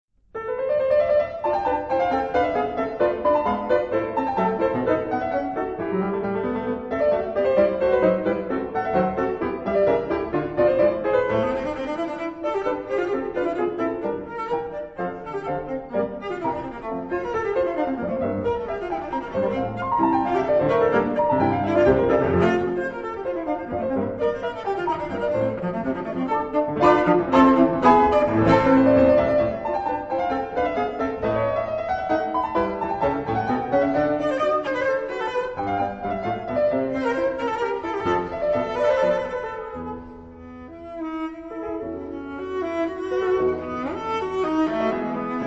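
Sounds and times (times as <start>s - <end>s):
cello playing an allegro chamber piece: 1.4s - 45.4s.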